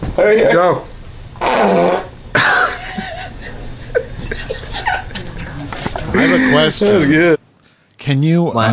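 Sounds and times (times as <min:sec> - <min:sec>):
speech: 0:00.2 - 0:02.0, 0:06.2 - 0:07.4, 0:08.0 - 0:08.7
fart being lit with a flame: 0:01.4 - 0:02.2
people giggling and snickering: 0:02.4 - 0:07.1.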